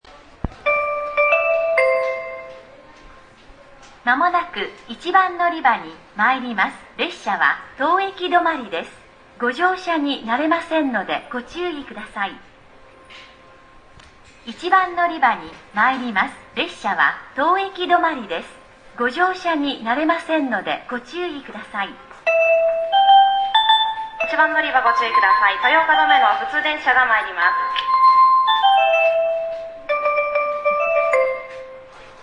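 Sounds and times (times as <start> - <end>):
station announcement on the San'in Line: 0.4 - 3.3, 4.0 - 12.6, 14.5 - 32.2
train approaching on the San'in Line in Toyooka: 0.6 - 2.8, 22.2 - 32.2.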